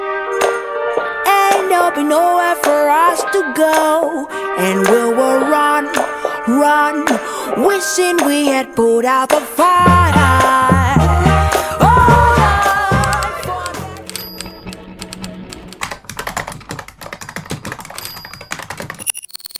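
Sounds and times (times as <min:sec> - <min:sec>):
music: 0:00.0 - 0:16.0
speech: 0:02.0 - 0:10.7
typewriter keys clattering: 0:14.0 - 0:19.1.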